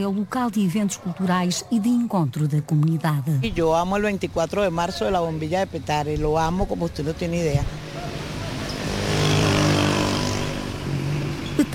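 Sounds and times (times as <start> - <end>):
speech: 0.0 - 8.2
dense road traffic rumble: 0.0 - 11.7
several engines droning and revving: 3.5 - 11.7.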